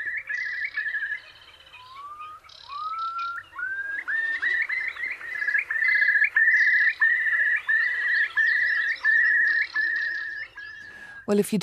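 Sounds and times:
curlew calling with whistled notes and bubbling trills: 0:00.0 - 0:11.3
speech: 0:11.3 - 0:11.6.

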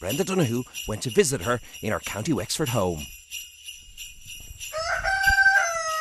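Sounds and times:
speech: 0:00.0 - 0:03.2
footsteps: 0:03.8 - 0:05.9
rooster crowing: 0:04.7 - 0:05.9.

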